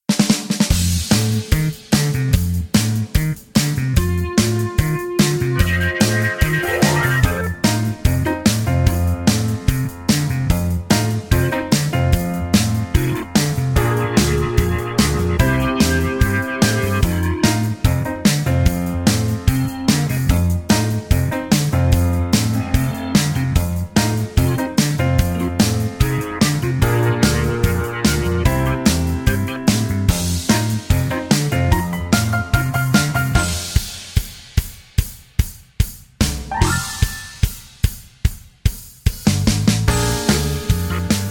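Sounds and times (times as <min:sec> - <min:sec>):
backing track music without guitar or backing vocals: 0:00.1 - 0:41.2.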